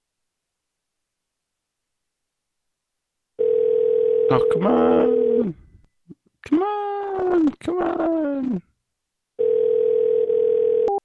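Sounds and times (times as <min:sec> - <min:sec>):
steady electronic telephone tone: 0:03.4 - 0:05.4, 0:09.4 - 0:11.0
speech: 0:04.3 - 0:05.6, 0:06.4 - 0:08.7.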